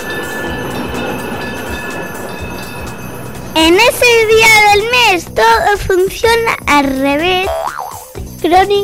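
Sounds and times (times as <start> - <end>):
faint thin metallic whine: 0.0 - 5.6
tram rumbling along its rails: 0.0 - 7.5
speech: 3.6 - 7.7, 8.4 - 8.8.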